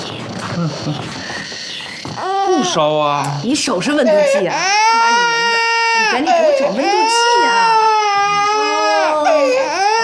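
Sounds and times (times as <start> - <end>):
speech: 0.6 - 1.4, 2.2 - 5.4, 6.1 - 7.7
feverish infant crying: 2.2 - 10.0.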